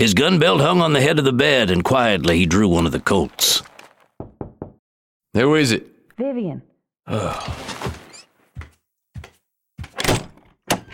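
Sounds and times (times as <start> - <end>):
speech: 0.0 - 3.7, 5.3 - 7.8
wooden door thunks and knocks: 4.2 - 4.8, 9.8 - 10.9.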